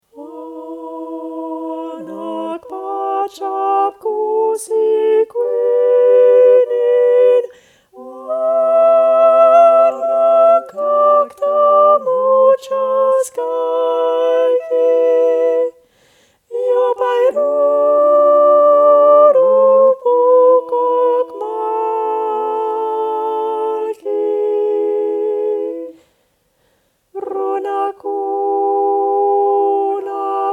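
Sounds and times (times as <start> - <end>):
sopranos singing: 0.0 - 15.8, 16.4 - 26.1, 27.2 - 30.5.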